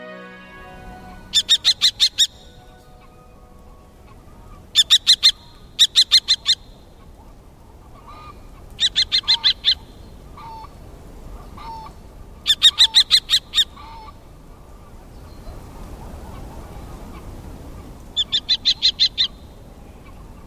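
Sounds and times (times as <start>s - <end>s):
low steady outdoor rumble above reed beds: 0.0s - 20.4s
common kestrel giving sharp high kee-kee-kee calls: 0.6s - 10.7s, 11.4s - 14.1s, 18.2s - 20.4s.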